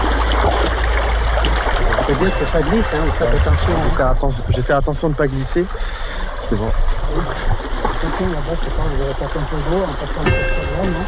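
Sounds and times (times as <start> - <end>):
flowing river water rushing: 0.0 - 11.0
speech: 2.1 - 11.0.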